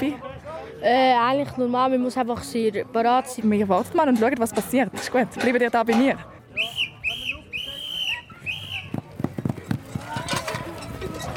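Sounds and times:
speech: 0.0s - 6.8s
shrill whistle blasts signaling food distribution: 6.6s - 9.0s
scrambling footsteps of people rushing in: 8.6s - 11.3s.

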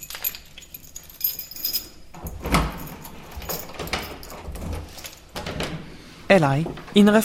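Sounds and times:
metallic jangling of keys: 0.0s - 5.4s
house door being unlatched and pushed open: 2.2s - 5.8s
speech: 6.3s - 7.2s.

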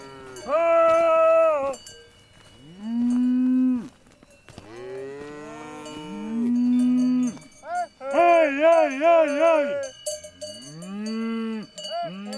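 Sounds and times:
shaggy highland cattle mooing on steep alpine meadows: 0.0s - 1.8s, 2.6s - 3.9s, 4.6s - 9.9s, 10.6s - 12.3s
cowbells clinking: 0.0s - 12.3s
farmer calling highland cattle: 0.1s - 1.8s, 6.7s - 10.0s.

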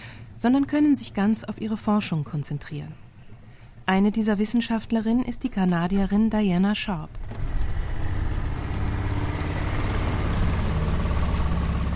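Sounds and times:
speech: 0.4s - 3.0s, 3.9s - 7.5s
small boat outboard motor running on a lake: 7.2s - 11.9s.

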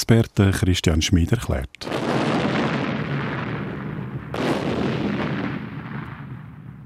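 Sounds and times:
speech: 0.0s - 2.1s
heavy cannon blasts with long low rumbling echo: 1.8s - 6.8s.

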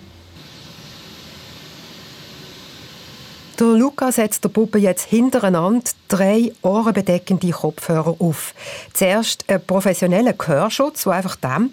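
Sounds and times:
pink noise played through a loudspeaker: 3.6s - 11.7s
speech: 3.6s - 11.7s.

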